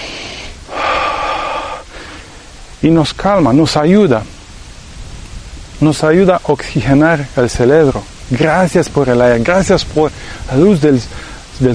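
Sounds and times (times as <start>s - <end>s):
deep breath in: 0.0s - 2.4s
faint breathing: 0.0s - 2.6s, 10.1s - 10.5s, 11.1s - 11.5s
speech: 2.8s - 4.4s, 5.8s - 11.7s.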